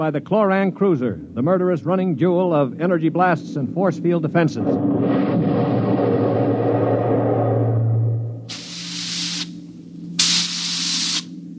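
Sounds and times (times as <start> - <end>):
speech: 0.0 - 5.4
faint hum: 0.0 - 11.5
low mechanical drone: 0.0 - 11.5
bursts of hissing steam through steering tubes: 8.4 - 9.6, 10.2 - 11.4.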